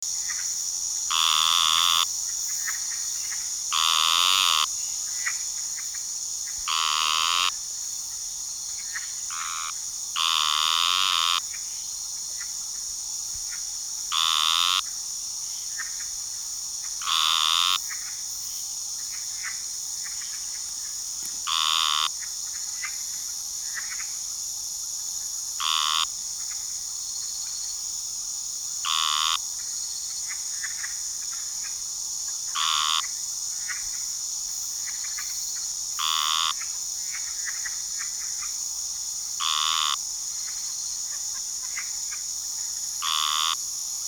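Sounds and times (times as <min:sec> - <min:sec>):
Gastrophryne elegans calling: 0:01.1 - 0:02.1, 0:02.8 - 0:05.4, 0:06.6 - 0:07.6, 0:08.9 - 0:11.6, 0:14.1 - 0:14.9, 0:17.0 - 0:18.0, 0:21.3 - 0:22.3, 0:25.6 - 0:26.1, 0:28.8 - 0:29.4, 0:32.5 - 0:33.1, 0:36.0 - 0:36.7, 0:39.4 - 0:40.0, 0:43.0 - 0:43.6.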